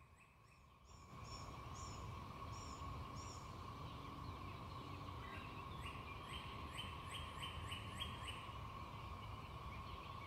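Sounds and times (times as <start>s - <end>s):
birds chirping: 0.0s - 10.2s
cicadas droning: 0.0s - 10.2s.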